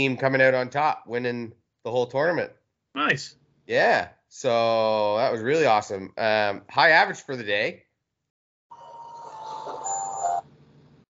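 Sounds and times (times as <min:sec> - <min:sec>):
speech: 0:00.0 - 0:07.8
short electronic alert chime from a phone: 0:08.7 - 0:10.5.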